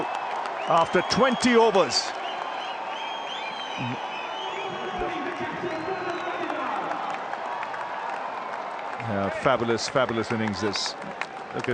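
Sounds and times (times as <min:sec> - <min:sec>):
scattered whistles from the crowd: 0:00.0 - 0:06.6
large stadium crowd cheering and applauding: 0:00.0 - 0:11.7
speech: 0:00.7 - 0:02.2, 0:03.8 - 0:04.1, 0:09.1 - 0:11.7.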